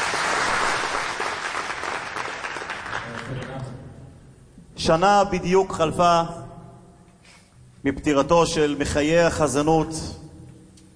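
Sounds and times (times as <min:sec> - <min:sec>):
large audience applause in a reverberant hall: 0:00.0 - 0:03.7
speech: 0:04.8 - 0:06.4, 0:07.8 - 0:10.2.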